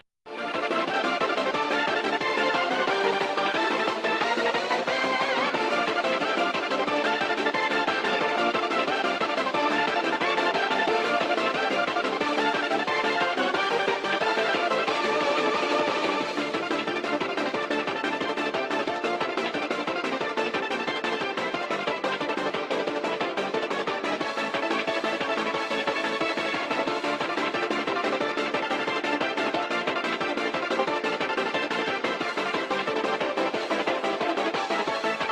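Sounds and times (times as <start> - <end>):
bad hold music: 0.3 - 35.2.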